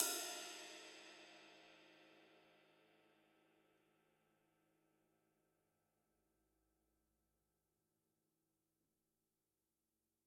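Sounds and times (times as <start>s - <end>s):
Gretsch drum kit: 0.0s - 1.1s
ride cymbal on a drum kit: 0.0s - 2.2s.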